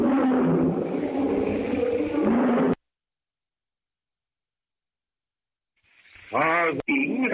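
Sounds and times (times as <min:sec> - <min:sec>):
lion roaring in the jungle at night: 0:00.0 - 0:02.8
speech: 0:06.3 - 0:06.8.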